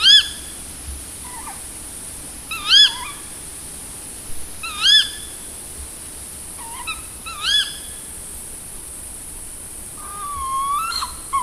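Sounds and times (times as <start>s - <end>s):
tawny owl giving loud harsh rising-and-falling calls: 0.0s - 0.5s, 1.2s - 1.6s, 2.5s - 3.3s, 4.6s - 5.4s, 6.6s - 8.0s, 10.0s - 11.4s.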